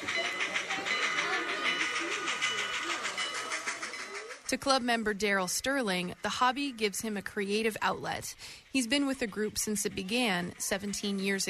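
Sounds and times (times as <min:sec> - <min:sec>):
low murmur of voices: 0:00.0 - 0:04.5
model train bell clanging: 0:00.0 - 0:05.6
speech: 0:04.5 - 0:11.4.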